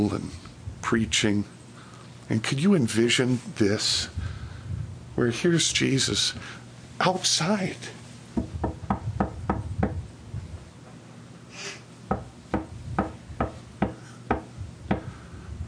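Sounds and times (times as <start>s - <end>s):
speech: 0.0s - 1.6s, 2.3s - 4.4s, 5.2s - 8.0s
firm hollow knocking on a wooden door: 8.4s - 10.0s, 12.1s - 15.1s.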